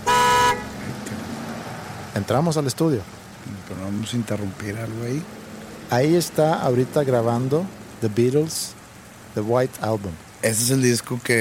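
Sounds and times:
car horn blast: 0:00.0 - 0:00.7
speech: 0:02.2 - 0:11.4.

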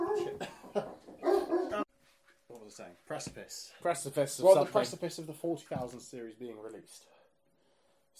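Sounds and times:
dog barking: 0:00.0 - 0:00.4, 0:01.2 - 0:01.8
speech: 0:02.8 - 0:07.2.

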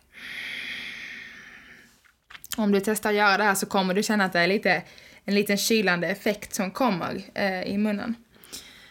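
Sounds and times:
long exhale through the nose with the mouth closed: 0:00.1 - 0:02.1
speech: 0:02.6 - 0:08.6.

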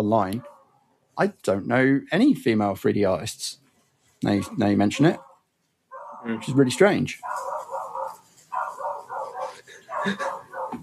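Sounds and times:
speech: 0:00.0 - 0:00.5, 0:01.2 - 0:03.6, 0:04.2 - 0:05.3, 0:06.2 - 0:07.6, 0:10.0 - 0:10.3
dog barking: 0:00.4 - 0:00.8, 0:04.2 - 0:10.8.

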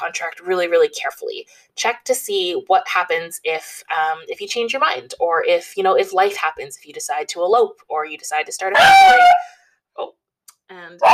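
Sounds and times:
speech: 0:00.1 - 0:11.1
dog barking: 0:08.8 - 0:09.5.

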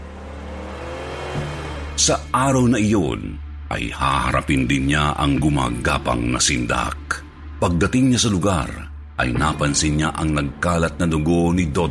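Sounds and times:
heavy four-wheel-drive engine droning under load: 0:00.0 - 0:02.1
speech: 0:01.4 - 0:11.8.

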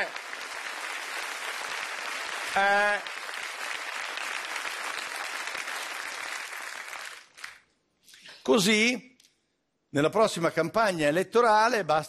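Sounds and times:
audience clapping: 0:00.0 - 0:07.8
speech: 0:02.6 - 0:03.1, 0:08.5 - 0:09.1, 0:09.9 - 0:12.0.

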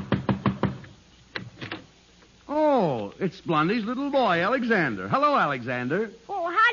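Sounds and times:
knocking on a wooden front door: 0:00.0 - 0:00.8
speech: 0:02.5 - 0:06.3.

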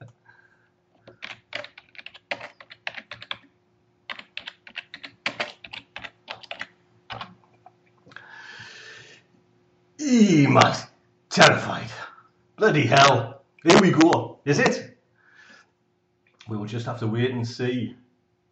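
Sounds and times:
faint low hum: 0:00.0 - 0:18.4
typing on a computer keyboard: 0:01.1 - 0:03.5, 0:04.1 - 0:07.4
speech: 0:10.1 - 0:12.0, 0:12.6 - 0:14.9, 0:16.5 - 0:18.0.

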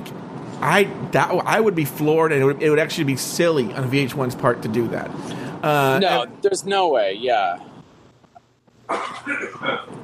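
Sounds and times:
speech: 0:00.6 - 0:07.7, 0:08.9 - 0:10.0
person coughing in a house: 0:08.9 - 0:10.0.

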